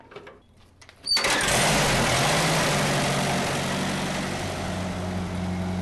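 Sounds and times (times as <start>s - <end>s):
1931 tractor engine with hand crank sputtering and running: 1.2s - 5.8s.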